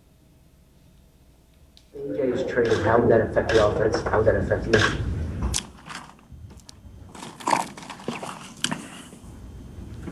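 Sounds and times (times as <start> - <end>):
speech: 2.0 - 5.1
ice rattling in a drink: 7.1 - 8.7.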